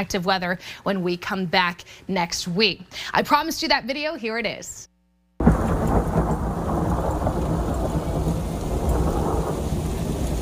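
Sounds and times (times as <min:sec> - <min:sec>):
speech: 0:00.0 - 0:04.9
deep thunder rumbling overhead during thunder snow: 0:05.4 - 0:10.3
soft hiss of falling precipitation: 0:05.4 - 0:10.3.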